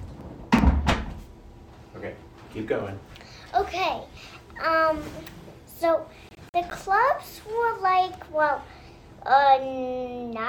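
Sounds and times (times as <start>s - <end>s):
door closing: 0.0s - 1.3s
speech: 2.0s - 10.4s.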